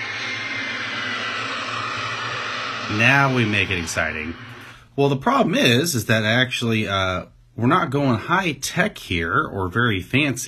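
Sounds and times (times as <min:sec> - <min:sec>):
airplane engine drone with low rumble: 0:00.0 - 0:05.2
speech: 0:02.9 - 0:10.4.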